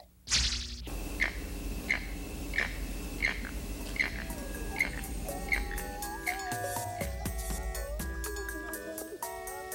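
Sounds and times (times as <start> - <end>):
steady hum: 0.1 - 9.6
birds chirping in a Costa Rican rainforest: 0.9 - 7.8
whistled bird notes in a Costa Rican rainforest: 1.2 - 6.5.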